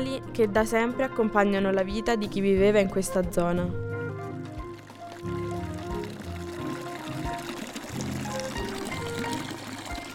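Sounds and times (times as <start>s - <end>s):
speech: 0.0s - 4.0s
water pouring and splashing from a fountain: 4.3s - 10.1s.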